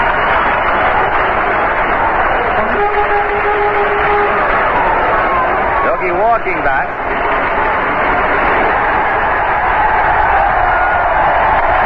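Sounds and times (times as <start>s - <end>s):
large stadium crowd roaring: 0.0s - 11.8s
speech: 6.4s - 7.3s.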